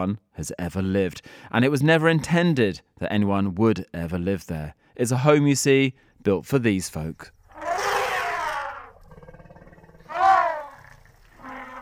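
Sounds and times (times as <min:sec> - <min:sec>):
speech: 0:00.0 - 0:07.4
elephants trumpeting: 0:07.5 - 0:11.8.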